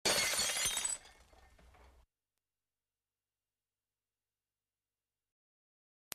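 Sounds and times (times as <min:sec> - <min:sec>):
glass breaking: 0:00.0 - 0:01.6.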